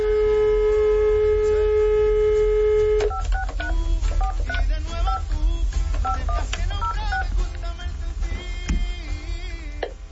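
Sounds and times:
long steady electronic phone dialing tone: 0:00.0 - 0:05.4, 0:06.0 - 0:07.3
continuous low hum: 0:00.0 - 0:10.1
automated recorded phone message: 0:03.0 - 0:05.4, 0:06.0 - 0:07.3.

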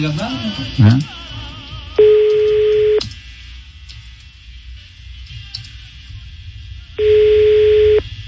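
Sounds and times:
speech: 0:00.0 - 0:01.2
low hiss: 0:00.0 - 0:08.2
phone line ringback tone: 0:02.0 - 0:03.0, 0:07.0 - 0:08.0.

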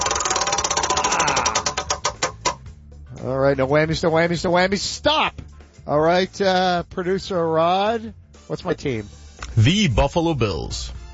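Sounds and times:
spinning prize wheel ticking: 0:00.0 - 0:02.7
speech: 0:03.4 - 0:05.3, 0:05.9 - 0:11.0.

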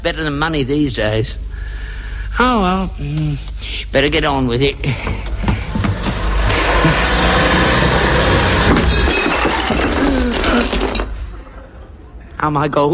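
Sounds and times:
speech: 0:00.0 - 0:05.5, 0:12.4 - 0:12.9
vacuum cleaner whirring: 0:04.9 - 0:09.2
porcelain knocked over by a vacuum cleaner cord crashing and shattering: 0:07.3 - 0:11.6.

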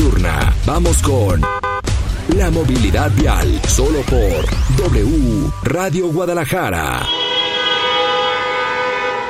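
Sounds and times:
speech: 0:00.7 - 0:01.6, 0:02.3 - 0:07.2
car horns honking at a street protest on Chapultepec in Guadalajara Mexico: 0:01.3 - 0:01.9, 0:07.0 - 0:09.2.

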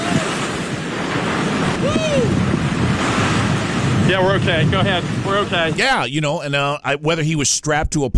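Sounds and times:
faint voice-like cry: 0:00.0 - 0:00.4, 0:01.8 - 0:02.4
huge ocean wave smashing into a reporter: 0:00.0 - 0:06.0
roar of surf during a hurricane: 0:00.0 - 0:06.7
gusting wind during a hurricane: 0:00.0 - 0:08.1
speech: 0:04.1 - 0:08.1.

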